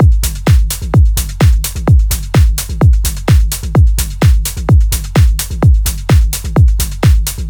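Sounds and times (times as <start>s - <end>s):
melodic techno drum loop: 0.0s - 7.4s.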